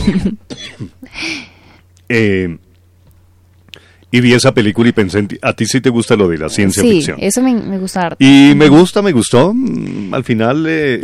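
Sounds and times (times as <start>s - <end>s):
speech: 0.0s - 0.5s, 2.1s - 2.6s, 4.1s - 11.0s
person coughing: 0.0s - 1.1s.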